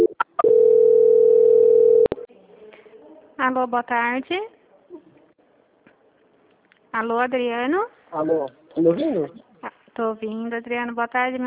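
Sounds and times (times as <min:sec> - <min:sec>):
telephone tone while a call is transferred: 0:00.0 - 0:02.1
speech: 0:03.4 - 0:04.6, 0:06.9 - 0:11.4.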